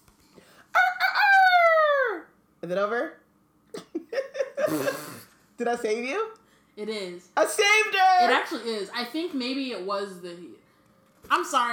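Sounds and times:
rooster crowing: 0.7 - 2.2
speech: 2.7 - 3.9, 4.7 - 10.6, 11.3 - 11.7.

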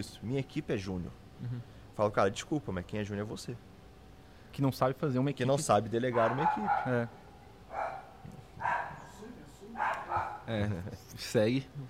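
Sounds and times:
speech: 0.0 - 3.7, 4.5 - 8.8, 10.5 - 11.8
low hum: 0.0 - 11.8
dog barking: 6.1 - 7.1, 7.7 - 9.2, 9.8 - 10.5.

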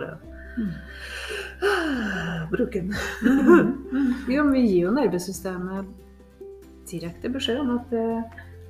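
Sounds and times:
speech: 0.0 - 6.0, 6.9 - 8.5
deep breath in and long exhale ending in a sigh: 0.4 - 2.5
laughter: 2.9 - 4.2.

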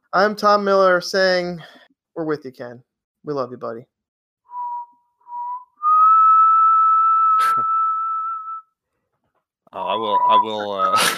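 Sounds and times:
speech: 0.1 - 3.9, 9.7 - 11.1
pre-recorded whistled melody: 4.5 - 8.8, 9.8 - 11.1.

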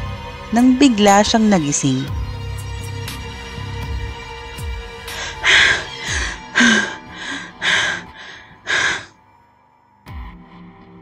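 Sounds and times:
speech: 0.5 - 2.2
person gasping for breath and panting heavily: 5.0 - 9.1.

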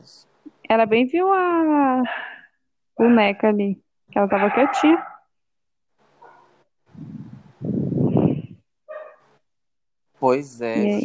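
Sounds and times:
speech: 0.0 - 2.3, 3.0 - 5.1, 10.2 - 11.0
dog barking: 4.4 - 5.3, 6.2 - 6.6, 8.9 - 9.2.

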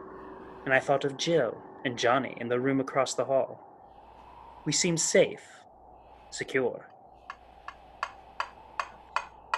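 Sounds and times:
faint low hum: 0.0 - 9.5
speech: 0.6 - 3.7, 4.6 - 5.6, 6.3 - 6.9
tapping on a window: 7.3 - 9.5.

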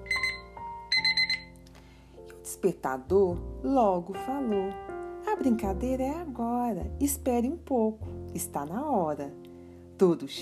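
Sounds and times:
electronic alarm clock beeping: 0.0 - 1.5
speech: 2.6 - 9.4, 10.0 - 10.4.

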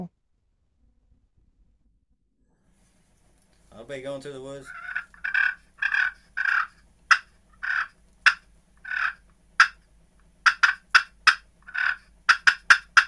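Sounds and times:
speech: 3.9 - 4.9
turkey game call imitating a hen purring and clucking: 4.4 - 13.0.

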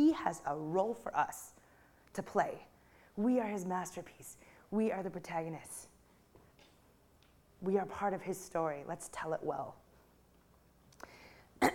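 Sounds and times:
speech: 0.0 - 5.9, 7.6 - 9.8
faint breathy clicks: 10.9 - 11.5
short sharp cough: 11.6 - 11.7.

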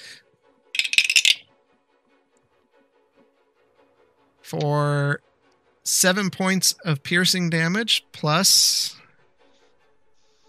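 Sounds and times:
dice rolling on a table: 0.8 - 1.4
speech: 4.5 - 9.0.

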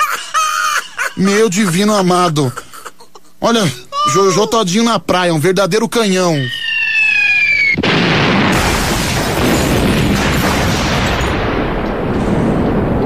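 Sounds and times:
speech: 1.2 - 2.6, 3.4 - 6.6
explosion sound effect roar: 7.0 - 13.0.

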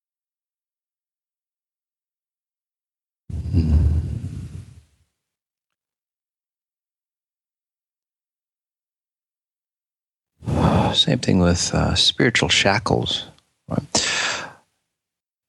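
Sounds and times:
deep breath in: 3.3 - 4.9, 10.4 - 11.0, 14.0 - 14.6
speech: 3.6 - 4.0, 11.0 - 14.1.

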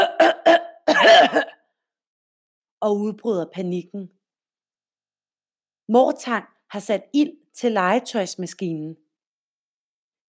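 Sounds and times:
person coughing: 0.0 - 1.6
speech: 2.8 - 4.2, 5.9 - 9.0.

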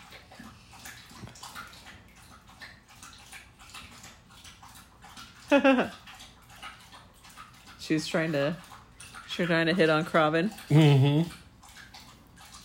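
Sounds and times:
dog loudly drinking water: 0.0 - 12.6
speech: 5.5 - 6.0, 7.9 - 8.7, 9.4 - 11.4.

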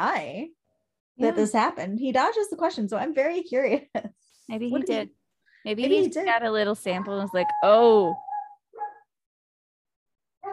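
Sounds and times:
speech: 0.0 - 0.6, 1.2 - 8.3
dog barking: 8.3 - 9.1.

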